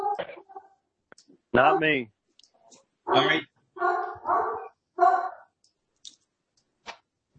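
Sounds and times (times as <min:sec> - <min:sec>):
speech: 0:01.5 - 0:02.2, 0:03.1 - 0:03.9
dog barking in short harmonic bursts: 0:03.1 - 0:05.4.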